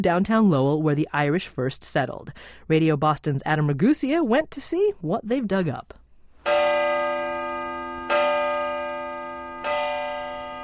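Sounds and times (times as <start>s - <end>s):
speech: 0.0s - 6.6s
largest of 13 church tower bells tolling: 6.4s - 10.6s.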